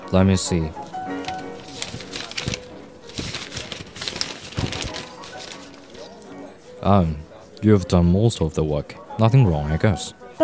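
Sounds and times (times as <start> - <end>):
low noise: 0.0 - 10.4
speech: 0.1 - 0.9, 6.8 - 10.4
paper sheets of paperwork rustling and shuffling: 0.8 - 6.4.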